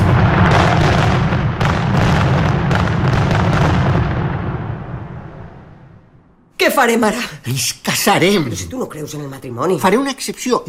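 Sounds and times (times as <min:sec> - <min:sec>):
fireworks rockets exploding: 0:00.0 - 0:05.9
speech: 0:06.8 - 0:10.6.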